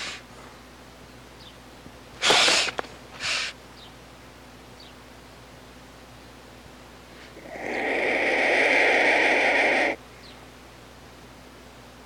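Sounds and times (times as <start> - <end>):
black vulture hissing: 0.0 - 0.3, 2.2 - 3.6, 7.2 - 10.0.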